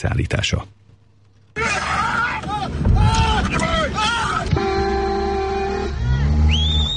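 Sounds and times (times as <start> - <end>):
speech: 0.0 - 0.8
several people shouting and yelling at a bear: 1.6 - 6.5
excited voices: 1.6 - 6.9
car horns honking at a bear: 3.4 - 6.9.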